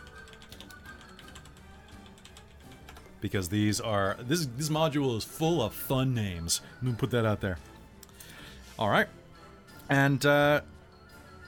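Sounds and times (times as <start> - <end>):
rapid typing on a computer keyboard: 0.0 - 3.2
speech: 3.2 - 7.7, 8.8 - 9.2, 9.9 - 10.7.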